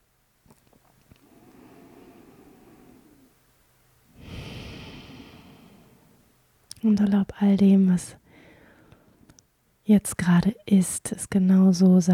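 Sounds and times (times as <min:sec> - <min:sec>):
deep breathing in and out: 0:01.1 - 0:06.4, 0:08.2 - 0:09.2
speech: 0:06.8 - 0:08.2, 0:09.9 - 0:12.1.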